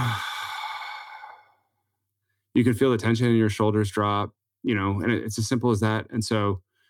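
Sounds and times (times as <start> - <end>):
slow deep belly breath with long exhale: 0.0 - 1.6
speech: 2.6 - 6.7.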